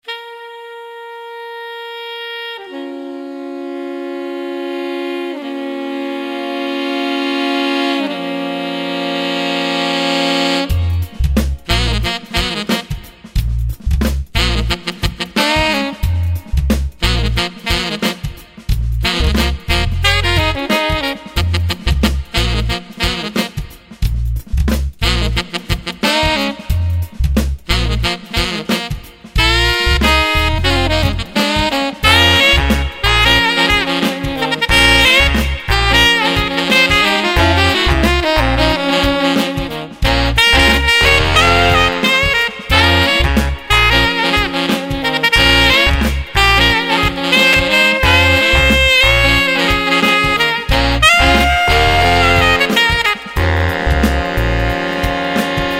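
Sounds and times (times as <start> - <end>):
saxophone playing: 0.0 - 13.6, 14.4 - 24.1, 25.0 - 55.7.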